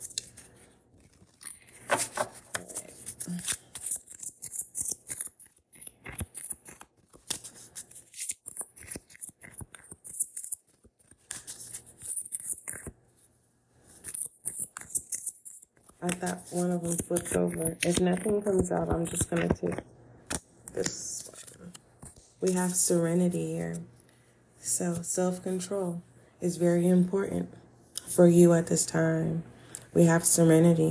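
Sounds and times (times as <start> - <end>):
deck of cards being shuffled: 0.0 - 13.0, 13.8 - 23.9
speech: 16.1 - 19.9, 20.8 - 21.0, 22.4 - 24.0, 24.8 - 27.6, 28.2 - 30.9.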